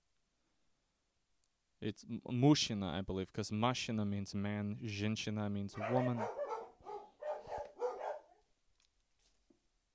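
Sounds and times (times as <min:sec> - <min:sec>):
speech: 0:01.8 - 0:06.4
dogs barking: 0:05.8 - 0:08.5.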